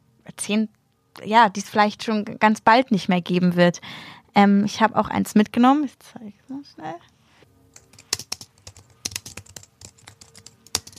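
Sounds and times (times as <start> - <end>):
speech: 0.3 - 7.1
typing on a computer keyboard: 7.7 - 10.9.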